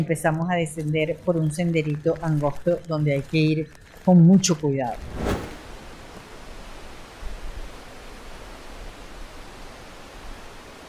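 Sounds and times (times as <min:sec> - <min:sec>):
speech: 0:00.0 - 0:05.4
roaring waterfall with heavy flow: 0:05.0 - 0:10.8.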